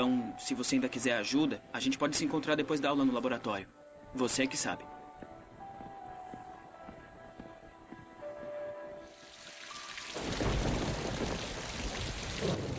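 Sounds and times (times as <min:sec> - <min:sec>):
speech: 0:00.0 - 0:05.0
heavy rain downpour: 0:09.2 - 0:12.7
deep rolling rumble of thunder: 0:10.1 - 0:12.7.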